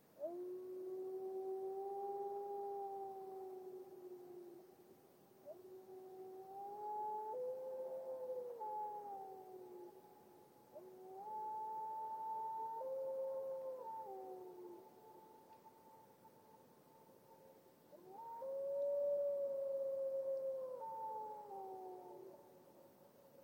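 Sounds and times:
lone grey wolf howling in a glacial valley in Washington: 0.2s - 4.6s, 5.4s - 10.0s, 10.7s - 15.6s, 17.9s - 22.4s.

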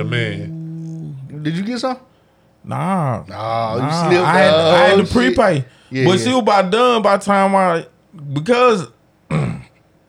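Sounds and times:
speech: 0.0s - 0.6s, 1.4s - 9.0s
person clearing throat: 9.3s - 9.8s.

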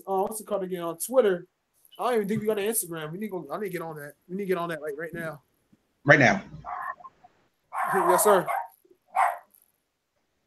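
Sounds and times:
speech: 0.3s - 6.8s, 7.9s - 8.6s
single sharp dog bark: 7.7s - 9.5s.

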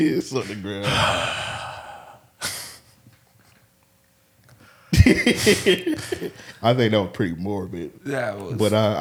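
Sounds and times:
speech: 0.0s - 1.7s, 5.1s - 9.0s
person imitating a boy's heavy labored panting: 0.4s - 2.8s
laughter: 5.0s - 6.7s.

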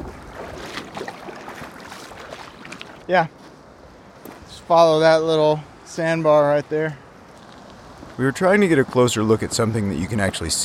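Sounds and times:
canoe sliding into river water: 0.0s - 3.0s
moving water: 0.0s - 10.6s
outdoor wind: 0.0s - 10.6s
speech: 3.1s - 3.4s, 4.7s - 7.0s, 8.2s - 10.6s.

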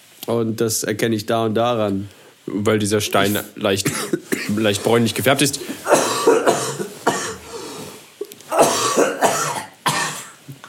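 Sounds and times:
speech: 0.3s - 6.0s
person coughing harshly: 3.8s - 4.8s, 5.6s - 7.8s, 8.5s - 10.4s.

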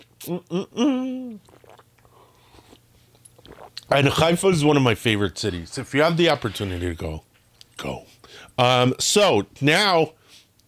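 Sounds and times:
speech: 0.2s - 1.7s, 3.9s - 10.2s
swallow: 1.3s - 2.8s, 3.4s - 3.9s
person sipping coffee: 1.3s - 3.9s.

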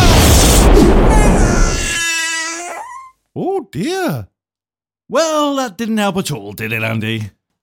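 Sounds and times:
loud cannon blast: 0.0s - 1.9s
speech: 3.6s - 4.3s, 5.1s - 7.4s.

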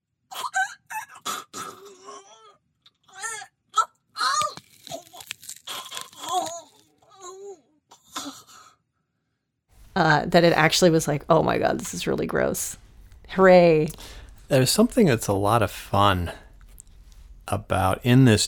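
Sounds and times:
person gasping and choking with gurgles and groans: 0.4s - 2.5s, 4.2s - 8.7s
celery sticks crunching and snapping while being twisted: 4.2s - 7.0s
speech: 10.0s - 16.4s, 17.5s - 18.4s.

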